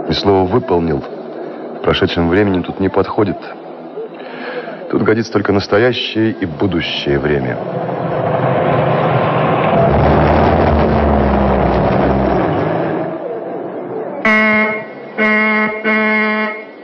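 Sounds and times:
speech: 0.1s - 1.1s, 1.8s - 3.6s, 4.9s - 8.0s
steady engine-like rumble: 6.3s - 14.2s
car horn honking: 14.2s - 16.8s.

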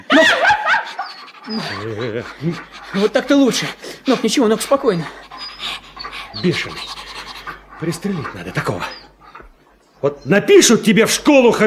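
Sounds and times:
laughter: 0.0s - 3.7s
dog whining: 0.1s - 10.3s
dog growling: 0.9s - 9.8s
speech: 1.5s - 6.9s, 7.8s - 9.0s, 10.0s - 11.6s.

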